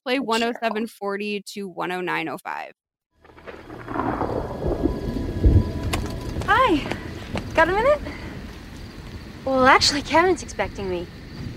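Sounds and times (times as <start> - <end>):
speech: 0.1 - 2.8, 6.5 - 7.0, 7.6 - 8.2, 9.4 - 11.2
steady rain on a stormy night: 3.2 - 11.0
low thunder rumbling: 3.2 - 11.5.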